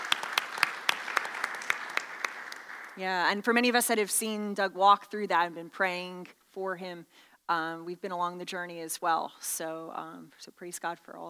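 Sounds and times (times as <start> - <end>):
audience applause: 0.0 - 3.4
speech: 3.0 - 11.2.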